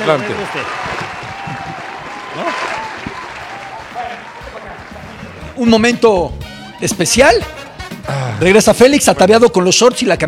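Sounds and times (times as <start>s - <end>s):
speech: 0.0s - 1.0s, 5.6s - 10.2s
crowd applauding: 0.0s - 5.7s
voices calling out and cheering: 0.0s - 5.8s.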